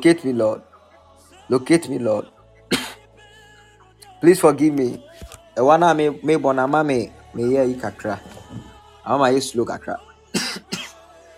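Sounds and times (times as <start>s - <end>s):
speech: 0.0s - 0.7s, 1.5s - 2.4s, 4.2s - 10.1s
person leading a prayer service coughing: 2.7s - 3.0s, 10.4s - 11.0s.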